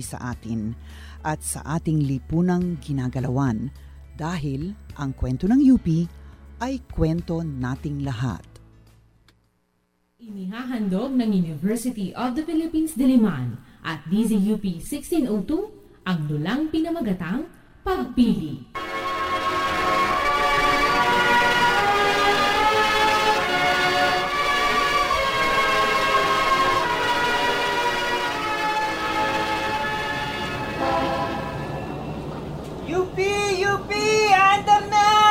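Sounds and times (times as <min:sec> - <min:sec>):
speech: 0:00.0 - 0:08.5, 0:10.2 - 0:18.9
chorus of blaring vehicle horns: 0:18.8 - 0:32.4
busy street traffic: 0:28.2 - 0:35.2.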